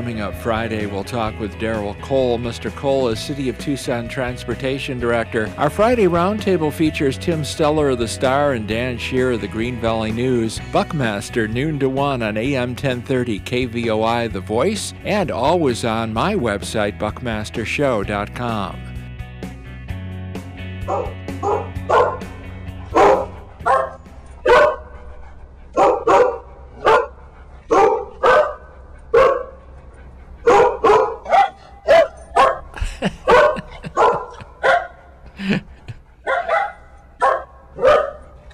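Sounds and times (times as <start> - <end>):
speech: 0.0 - 18.9, 20.9 - 21.2
dog barking with higher yips: 20.9 - 25.0, 25.8 - 29.6, 30.4 - 35.1, 36.2 - 38.4
laughter: 32.7 - 34.7, 35.3 - 36.2.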